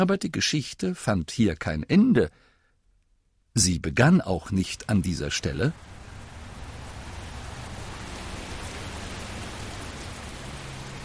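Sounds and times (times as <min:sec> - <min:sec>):
speech: 0:00.0 - 0:02.5, 0:03.6 - 0:05.9
heavy rain falling in large splashing drops: 0:04.4 - 0:11.0.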